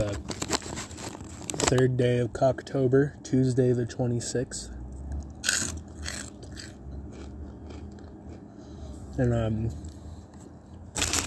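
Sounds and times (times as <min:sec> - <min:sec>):
speech: 0:01.7 - 0:04.8, 0:09.2 - 0:09.8
person biting and chewing crunchy lunch food: 0:05.2 - 0:08.5, 0:11.0 - 0:11.2.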